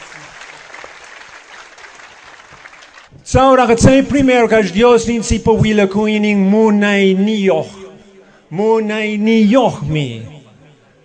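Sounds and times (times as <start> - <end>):
audience applauding: 0.0 - 3.2
speech: 3.2 - 7.8, 8.5 - 10.3.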